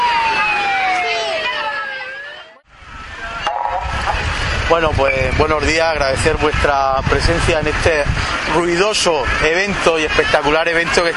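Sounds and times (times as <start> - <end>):
fire truck siren wailing with a falling gliding tone: 0.0 - 5.5
busy street noise: 0.0 - 11.1
speech: 4.7 - 11.1.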